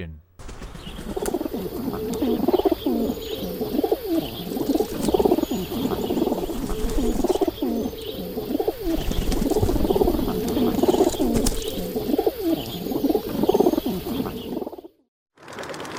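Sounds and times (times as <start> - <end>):
rock pigeon cooing: 0.4 - 14.9.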